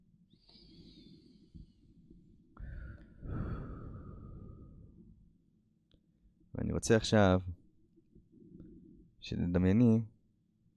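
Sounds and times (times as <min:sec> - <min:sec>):
slow deep breath in and long airy exhale: 0:00.3 - 0:01.9, 0:02.6 - 0:05.2
speech: 0:06.8 - 0:07.6, 0:09.2 - 0:10.1.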